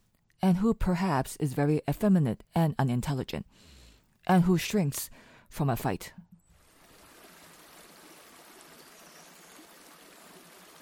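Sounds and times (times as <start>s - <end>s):
speech: 0.4s - 6.2s
river flowing on a sunny afternoon: 6.6s - 10.8s.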